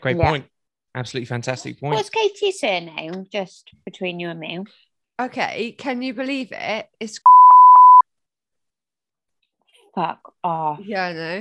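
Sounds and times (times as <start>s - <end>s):
speech: 0.0s - 7.4s, 10.0s - 11.3s
loud censor bleep with steady pure mid-pitched tone: 7.2s - 8.0s.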